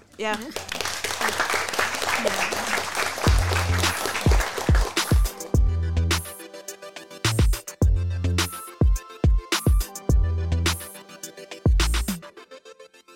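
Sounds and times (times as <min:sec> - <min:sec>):
speech: 0:00.2 - 0:01.4
dense crackling applause from a group: 0:00.2 - 0:05.5
rhythmic music with punchy bass beats and steady chords: 0:03.3 - 0:12.4.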